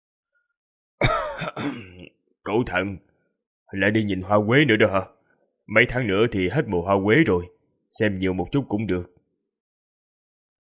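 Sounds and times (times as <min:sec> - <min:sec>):
dry harsh coughing from another room of a small mud-walled house: 0:01.0 - 0:02.1
speech: 0:01.4 - 0:03.1, 0:03.7 - 0:09.1.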